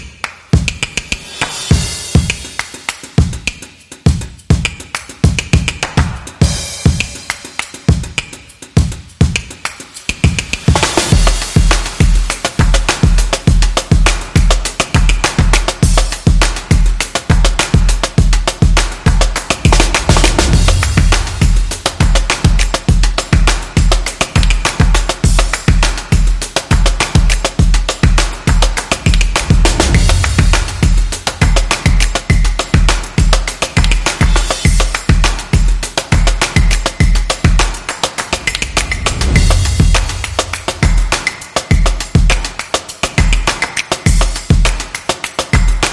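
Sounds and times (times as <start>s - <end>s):
calm drum beat: 0.5s - 45.9s.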